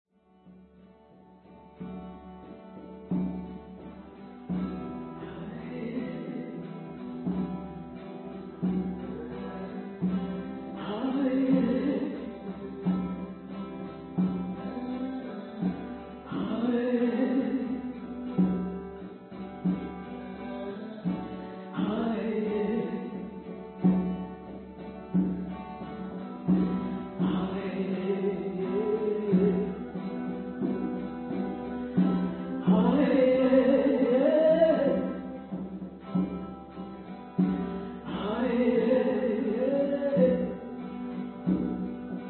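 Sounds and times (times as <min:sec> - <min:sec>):
guitar: 0:00.0 - 0:42.2
drum: 0:01.8 - 0:42.2
person singing: 0:04.5 - 0:07.6, 0:08.6 - 0:18.9, 0:20.2 - 0:24.1, 0:26.4 - 0:35.6, 0:37.4 - 0:42.2.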